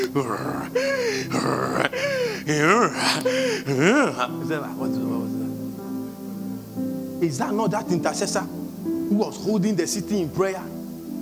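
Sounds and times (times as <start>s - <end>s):
person imitating snoring with breathy snorts and groans: 0.0s - 4.2s
speech: 0.0s - 5.6s, 7.2s - 10.8s.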